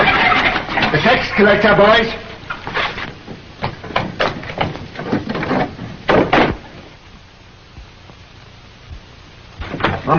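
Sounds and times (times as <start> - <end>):
clattering wooden thumps and rattles: 0.0 - 1.0, 2.7 - 6.9, 9.6 - 10.1
speech: 0.9 - 2.2
door being shut: 3.6 - 6.8, 9.6 - 10.1.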